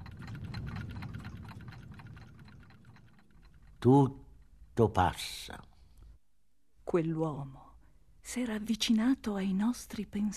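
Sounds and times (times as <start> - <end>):
continuous low rumble: 0.0 - 4.8
clock ticking: 0.0 - 6.1
speech: 3.8 - 4.2, 4.8 - 5.7, 6.9 - 7.6, 8.2 - 10.3.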